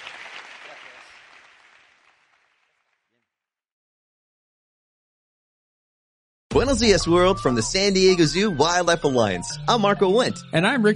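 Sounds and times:
audience applause at the end of a talk: 0:00.0 - 0:03.1
speech: 0:06.6 - 0:10.9.

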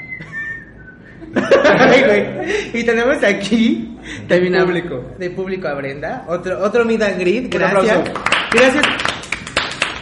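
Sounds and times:
person whistling a sustained note: 0:00.0 - 0:01.3
people laughing: 0:01.2 - 0:02.7
speech: 0:01.2 - 0:09.1.

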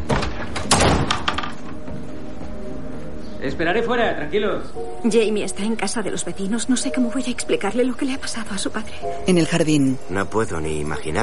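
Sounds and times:
house door being shut: 0:00.0 - 0:01.8
speech: 0:03.4 - 0:11.2.

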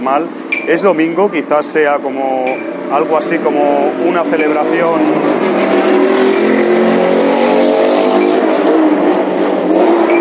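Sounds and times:
speech: 0:00.0 - 0:06.1
loud car engine revving hard while passing by: 0:02.5 - 0:10.2.

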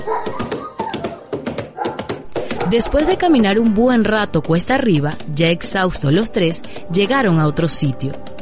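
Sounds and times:
speech: 0:00.0 - 0:00.4, 0:02.7 - 0:08.3
dog whimpering and yelping: 0:00.0 - 0:02.0.

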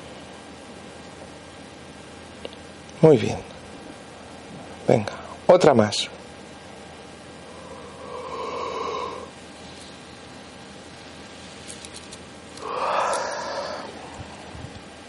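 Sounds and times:
quiet hiss: 0:00.0 - 0:15.0
speech: 0:03.0 - 0:03.5, 0:04.9 - 0:06.2
deep breathing in and out: 0:07.4 - 0:10.0, 0:12.6 - 0:14.8.

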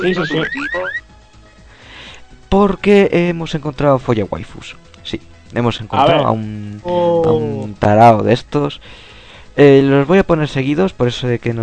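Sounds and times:
electronic alarm whooping: 0:00.0 - 0:01.0
speech: 0:00.0 - 0:01.0, 0:02.5 - 0:11.6.

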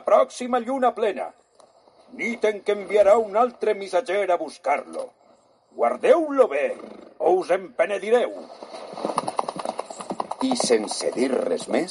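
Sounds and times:
faint hiss: 0:00.0 - 0:11.9
speech: 0:00.1 - 0:01.4, 0:02.1 - 0:05.2, 0:05.8 - 0:09.2, 0:10.4 - 0:11.9
horse hooves clip-clopping at a trot: 0:08.5 - 0:11.9.

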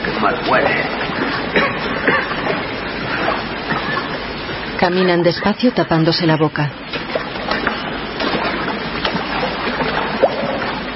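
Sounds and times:
water rushing through an underground tunnel: 0:00.0 - 0:10.9
speech: 0:00.2 - 0:01.1, 0:04.8 - 0:06.9.

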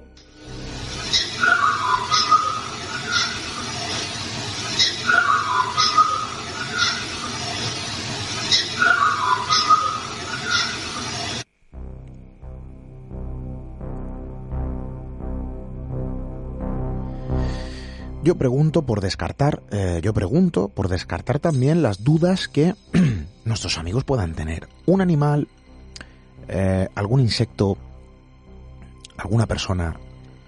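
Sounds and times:
low tonal background: 0:00.0 - 0:30.4
faint wavering whistle: 0:01.1 - 0:03.4, 0:04.8 - 0:07.0
speech: 0:18.3 - 0:25.6, 0:26.5 - 0:27.9, 0:29.2 - 0:30.1.

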